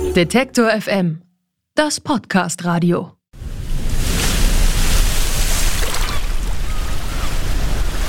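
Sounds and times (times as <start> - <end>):
speech: 0.1 - 3.2
broadband rush of wind and spray: 3.3 - 8.0
water slapping against a sailboat's hull: 3.9 - 8.0.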